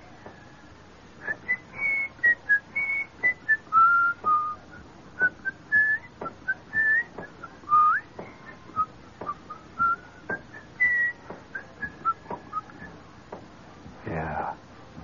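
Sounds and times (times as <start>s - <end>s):
people whistling a march tune outdoors: 1.2s - 13.0s
steady beat of sharp evenly spaced taps: 6.2s - 9.5s, 10.2s - 13.5s.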